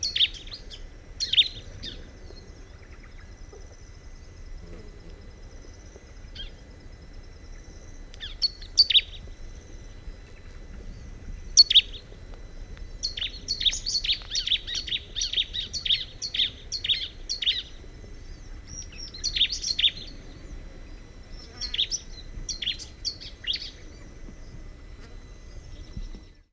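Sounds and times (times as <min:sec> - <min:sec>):
Bar-winged prinia chirping: 0:00.0 - 0:03.4, 0:08.2 - 0:09.3, 0:10.3 - 0:12.1, 0:13.0 - 0:24.6.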